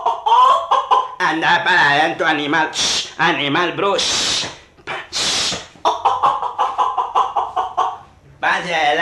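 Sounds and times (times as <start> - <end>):
hen clucking: 0.0 - 1.2, 4.1 - 8.2
speech: 1.3 - 4.6.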